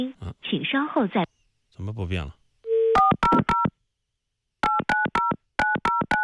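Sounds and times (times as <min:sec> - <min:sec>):
speech: 0:00.0 - 0:02.4
touch-tone telephone keypad dialing a customer service number: 0:03.0 - 0:03.7, 0:04.6 - 0:06.2.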